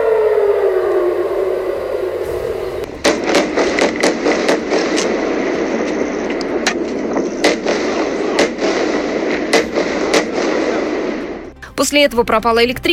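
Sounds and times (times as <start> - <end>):
steady rumbling background: 0.2 - 12.9
automatic rifle gunshots at an open-air festival ground: 2.3 - 11.5
speech: 11.8 - 12.9.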